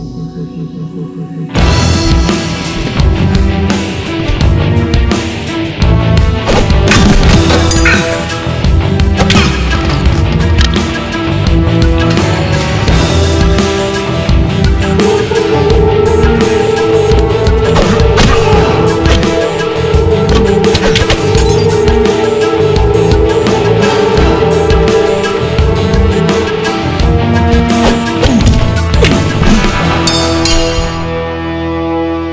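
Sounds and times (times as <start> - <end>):
wizard sword fight score music: 1.5 - 32.2.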